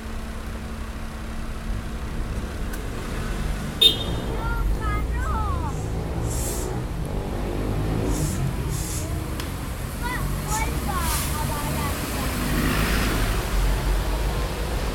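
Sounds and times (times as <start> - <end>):
city street traffic at a red traffic light: 0.0 - 14.9
indistinct voices: 4.1 - 12.8.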